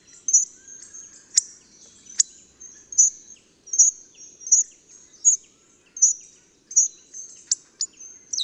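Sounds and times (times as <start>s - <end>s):
hawfinch song: 0.0s - 8.4s.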